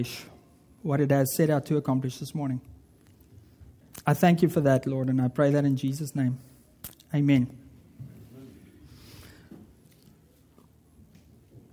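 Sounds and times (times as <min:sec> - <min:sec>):
speech: 0:00.0 - 0:02.7, 0:04.0 - 0:07.6
person sipping water: 0:09.0 - 0:11.0.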